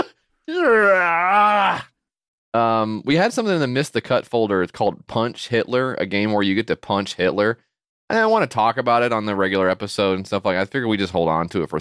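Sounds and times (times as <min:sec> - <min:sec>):
person's exaggerated imitated vocal yawn: 0:00.0 - 0:02.0
speech: 0:00.5 - 0:01.0, 0:02.5 - 0:11.7.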